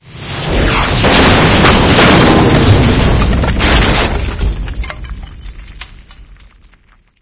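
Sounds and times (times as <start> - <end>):
house explosion: 0.5 - 5.7.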